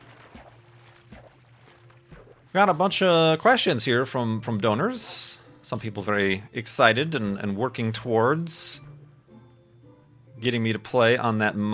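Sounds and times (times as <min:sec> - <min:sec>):
video game boat paddle strokes: 0:00.0 - 0:02.6
speech: 0:02.5 - 0:08.9, 0:10.4 - 0:11.7.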